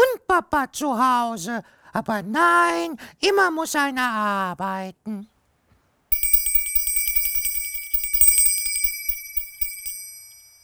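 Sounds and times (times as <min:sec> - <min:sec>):
speech: 0:00.4 - 0:05.3
small bell tinkling: 0:06.1 - 0:10.6.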